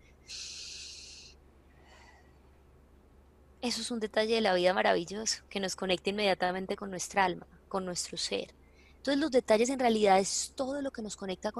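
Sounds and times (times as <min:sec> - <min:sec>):
breath drawn through the nose or mouth: 0:00.3 - 0:02.4, 0:08.6 - 0:09.0
speech: 0:03.6 - 0:11.5.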